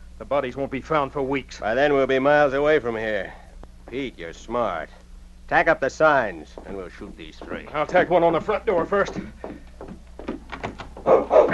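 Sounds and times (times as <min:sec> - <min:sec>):
speech: 0:00.2 - 0:09.6
thuds and knocks of a dog charging into a cabin room: 0:06.6 - 0:11.5
great dog barking: 0:11.0 - 0:11.5.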